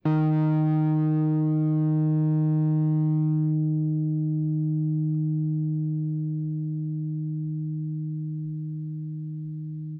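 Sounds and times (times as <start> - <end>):
angry guitar: 0.0 - 9.9.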